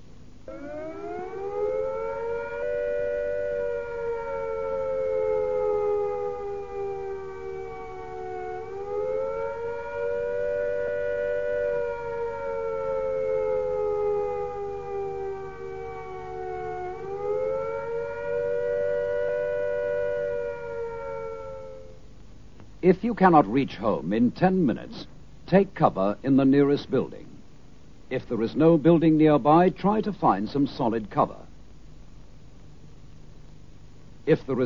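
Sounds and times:
speech: 0.5s - 1.1s, 22.9s - 27.2s, 28.1s - 31.4s, 34.3s - 34.6s
civil defense attack warning siren wailing: 0.5s - 22.1s.

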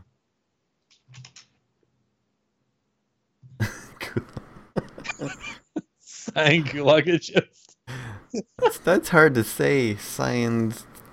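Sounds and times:
typing on a computer keyboard: 0.9s - 1.6s
laughter: 3.6s - 9.5s
speech: 5.2s - 5.6s, 6.4s - 7.7s, 8.3s - 11.1s.

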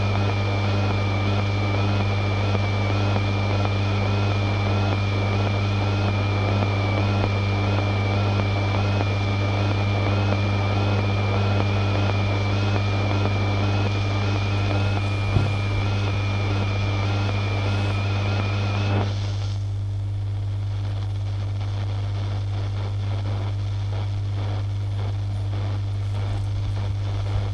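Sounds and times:
old radio droning with a heavy steady low hum: 0.0s - 27.5s
stack of whining radio tones: 12.8s - 19.1s.

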